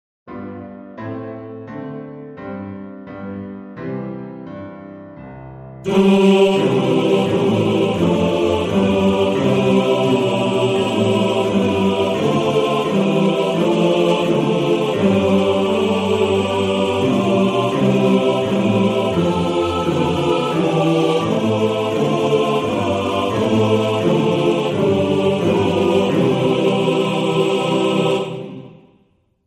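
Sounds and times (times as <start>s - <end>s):
male choir singing: 5.8s - 28.9s.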